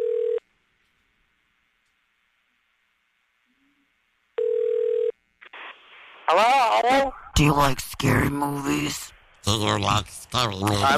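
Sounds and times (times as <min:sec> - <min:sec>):
telephone dial tone: 0:00.0 - 0:00.4, 0:04.4 - 0:05.2
speech: 0:06.3 - 0:10.9.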